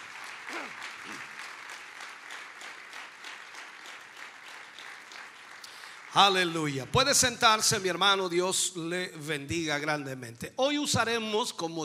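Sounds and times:
audience applauding: 0.0 - 7.9
speech: 6.2 - 11.8.

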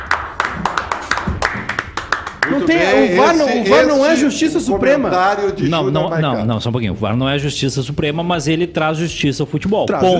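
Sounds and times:
hands clapping: 0.0 - 3.3
speech: 2.5 - 10.1.

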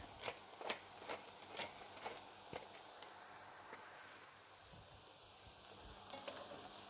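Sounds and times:
stirring scrapes: 0.0 - 3.9
food seasoned with salt and black pepper sizzling in a hot pan: 0.0 - 6.8.

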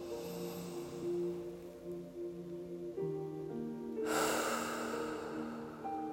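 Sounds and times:
deep breath drawn in slowly through the nose: 0.0 - 1.5, 4.0 - 6.1
faint sustained tones: 0.0 - 6.1.

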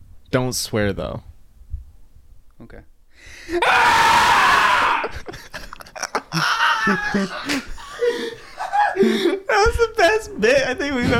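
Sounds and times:
speech: 0.3 - 1.3, 2.6 - 4.3, 6.4 - 8.3, 9.0 - 11.1
person screaming: 3.5 - 5.2
people laughing: 4.8 - 9.5.

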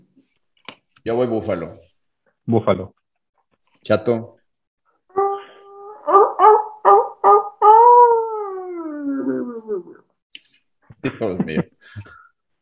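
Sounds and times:
speech: 1.0 - 3.0, 3.8 - 4.4, 11.0 - 12.6
wolf howling: 5.1 - 10.1.

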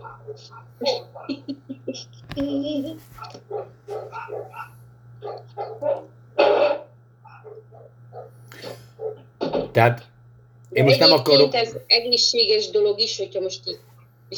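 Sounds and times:
faint dog barking: 0.0 - 1.6, 2.8 - 9.6
laughter: 0.0 - 4.5
speech: 0.2 - 3.7, 9.8 - 10.1, 10.8 - 14.3.

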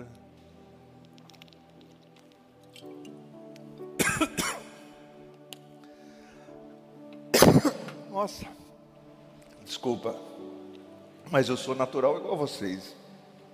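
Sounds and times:
person coughing from choking: 4.0 - 4.8, 7.3 - 8.0
speech: 7.6 - 8.6, 9.8 - 10.4, 11.3 - 13.0.

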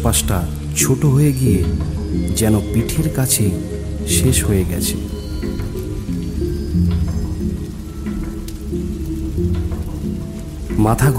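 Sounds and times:
speech: 0.0 - 5.5, 10.8 - 11.1
rain pattering down steadily in darkness: 0.0 - 11.1.

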